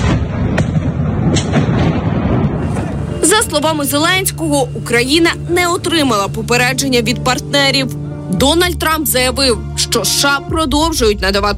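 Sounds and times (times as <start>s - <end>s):
explosions booming: 0.0s - 3.2s
speech: 3.4s - 11.5s.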